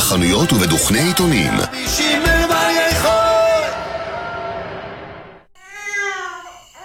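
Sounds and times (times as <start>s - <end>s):
speech: 0.1s - 2.2s
loud blaring burst of sound: 2.8s - 5.5s
baby crying in high-pitched wails: 5.6s - 6.8s.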